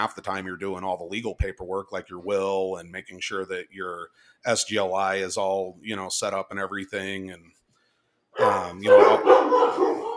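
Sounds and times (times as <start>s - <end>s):
speech: 0.0s - 7.6s, 8.4s - 10.0s
dogs barking and yowling: 8.4s - 10.1s.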